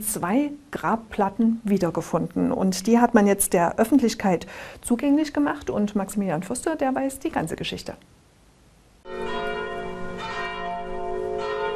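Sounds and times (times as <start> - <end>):
speech: 0.0 - 8.2
church bells ringing at unveiling of two historic gravestones: 9.1 - 11.7.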